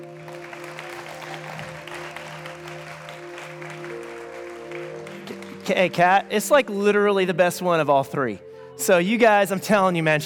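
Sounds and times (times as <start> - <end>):
audience applause: 0.0 - 6.3
sustained low keyboard chord humming: 0.0 - 10.2
speech: 5.7 - 10.2.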